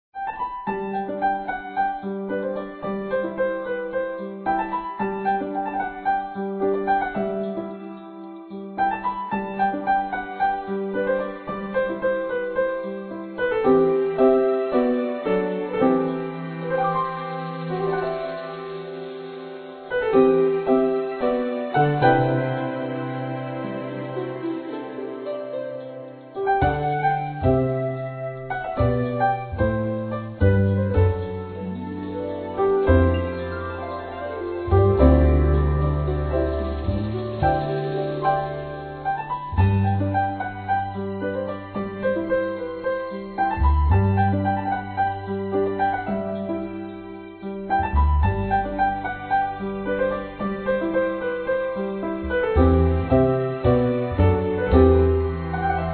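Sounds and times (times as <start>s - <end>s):
massage background music: 0.2s - 55.9s.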